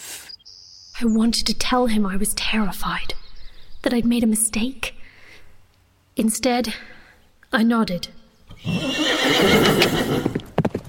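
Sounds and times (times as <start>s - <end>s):
speech: 1.0s - 3.2s, 3.8s - 4.9s, 6.2s - 10.4s
horse whinnying: 8.5s - 10.4s
horse hooves clip-clopping as riders set off: 9.6s - 10.8s.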